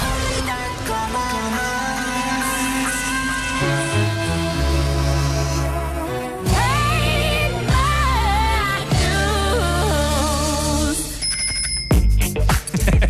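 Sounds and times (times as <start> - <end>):
music with a melodic vocal line: 0.0 - 11.3
bright metallic bicycle bell ringing: 11.2 - 12.1.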